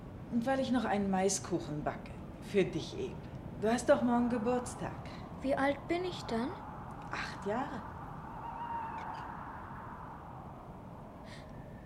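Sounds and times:
low hiss: 0.0 - 11.8
speech: 0.3 - 7.9
owl calling at night: 4.3 - 11.8.

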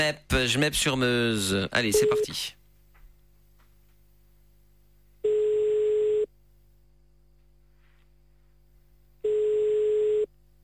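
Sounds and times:
speech: 0.0 - 2.6
telephone line tone while placing a call: 1.9 - 2.4, 5.2 - 6.3, 9.2 - 10.4.

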